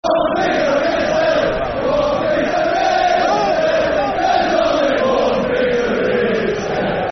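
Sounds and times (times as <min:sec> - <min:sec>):
football crowd chanting soccer songs: 0:00.0 - 0:07.1.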